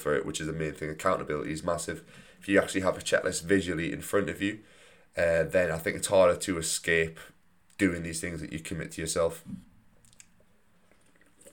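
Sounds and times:
speech: 0.0 - 9.7
person slurping a drink: 10.1 - 11.5.

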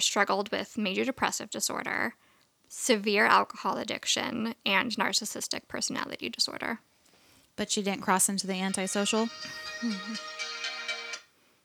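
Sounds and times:
speech: 0.0 - 6.9, 7.6 - 10.5
mobile phone ringtone: 8.7 - 11.3.

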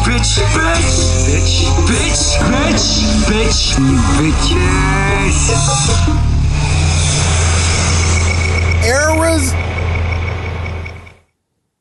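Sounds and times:
speech: 0.2 - 6.3, 8.8 - 9.6
loud steady electronic drone ending a jingle: 0.9 - 11.3
brief voice or warbling tone: 8.8 - 9.6.

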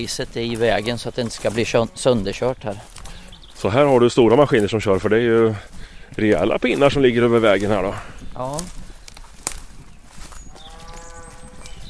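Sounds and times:
speech: 0.0 - 3.0, 3.6 - 8.8
steady outdoor noise: 0.0 - 11.8
cattle mooing on open pasture: 10.5 - 11.8.

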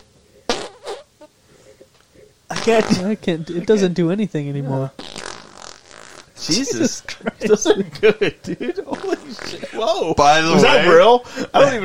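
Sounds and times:
wet sputtering armpit fart noises: 0.0 - 1.3, 2.5 - 3.1, 5.0 - 6.4
quiet room noise: 0.0 - 11.8
speech: 2.6 - 5.0, 6.4 - 11.8
laughter: 6.4 - 11.8.

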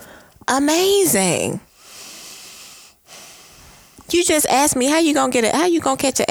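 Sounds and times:
heavy huffing and puffing breathing: 0.0 - 4.2
speech: 0.5 - 1.7, 4.1 - 6.2.

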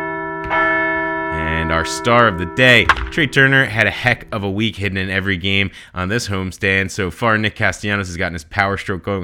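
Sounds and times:
bell ringing for a series win: 0.2 - 4.7
speech: 1.7 - 9.2.

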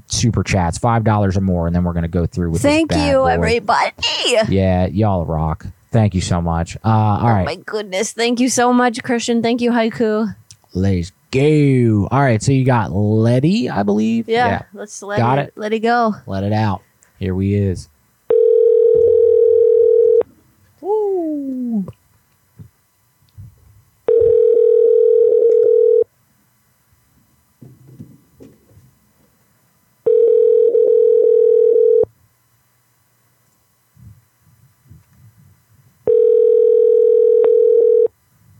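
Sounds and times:
speech: 0.1 - 17.9, 21.3 - 22.0
telephone line tones on an outgoing call: 18.3 - 20.2, 24.1 - 26.1, 30.0 - 32.1, 36.1 - 38.1.

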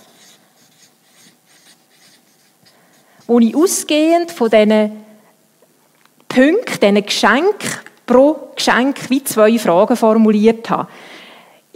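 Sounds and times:
pen writing by hand: 0.0 - 3.8
speech: 3.3 - 5.1, 6.4 - 11.1.

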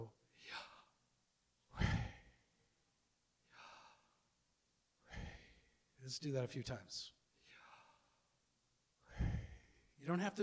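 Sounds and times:
soft airy sighing breaths in and out: 0.3 - 1.0, 1.7 - 2.6, 3.4 - 4.4, 5.0 - 6.0, 7.3 - 8.4, 9.0 - 10.0
speech: 6.1 - 7.2, 10.0 - 10.4.

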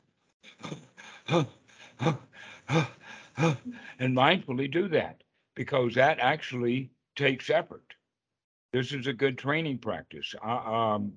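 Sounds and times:
rapid short breaths in a mindful breathing exercise: 0.4 - 4.0
speech: 1.3 - 7.9, 8.7 - 11.1.

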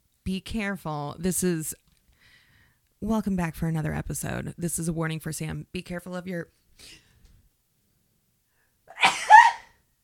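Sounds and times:
speech: 0.3 - 1.8, 3.0 - 7.0
person sneezing: 8.9 - 9.8.

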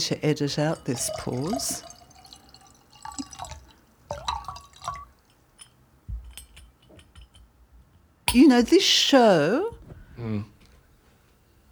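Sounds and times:
speech: 0.0 - 1.9, 8.3 - 10.5
light clink of glass: 0.5 - 7.5
water poured into a glass: 0.7 - 5.4.

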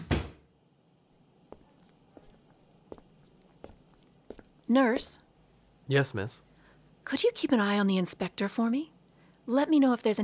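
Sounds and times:
door swinging shut with a muffled thud: 0.0 - 0.4
soft footsteps moving away: 1.5 - 4.7
speech: 4.7 - 5.2, 5.9 - 6.5, 7.1 - 8.9, 9.5 - 10.2.

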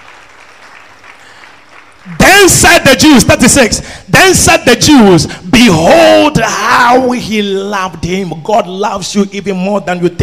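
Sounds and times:
crowd clapping: 0.0 - 2.9
speech: 2.0 - 10.2.

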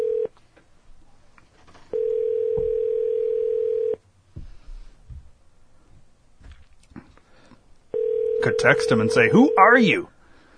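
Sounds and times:
phone ringback tone for an outgoing call: 0.0 - 0.3, 1.9 - 4.0, 7.9 - 9.8
speech: 8.6 - 10.2.

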